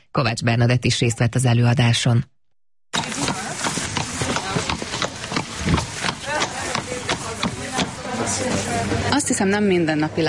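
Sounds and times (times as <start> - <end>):
speech: 0.2 - 2.4, 8.3 - 10.2
horse hooves clopping on a hard floor in a university hall: 3.0 - 8.7
shuffling steps: 3.0 - 9.1
voices murmuring: 3.0 - 9.3.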